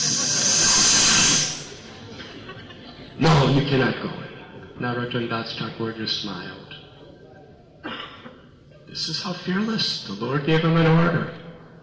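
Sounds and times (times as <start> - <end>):
snake hissing: 0.0 - 2.0
laughter: 0.0 - 3.6
speech: 3.2 - 6.7, 9.0 - 11.4.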